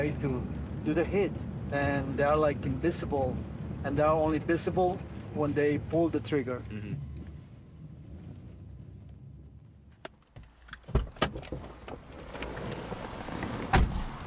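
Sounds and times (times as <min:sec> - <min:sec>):
speech: 0:00.0 - 0:07.1
low engine-like rumble: 0:00.0 - 0:14.2
car door clunks: 0:10.4 - 0:12.0.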